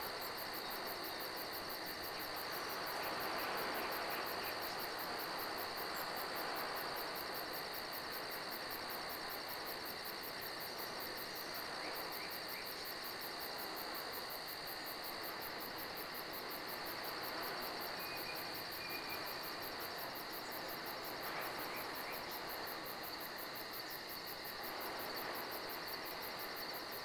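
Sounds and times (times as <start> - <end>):
wind: 0.0 - 27.0.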